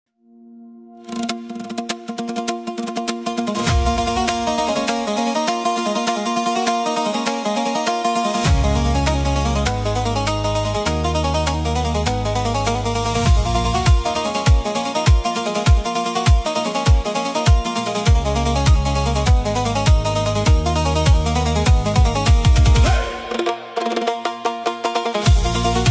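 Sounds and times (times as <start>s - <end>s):
voice with pandur music: 1.0s - 25.9s.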